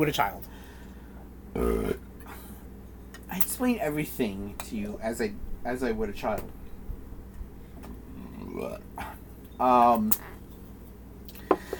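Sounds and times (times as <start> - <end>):
speech: 0.0 - 0.6, 1.6 - 2.0, 3.4 - 6.6, 8.6 - 10.3
loud low throaty burp: 1.5 - 2.1, 8.1 - 9.1
quiet mouth sounds: 1.6 - 2.1, 8.0 - 9.2.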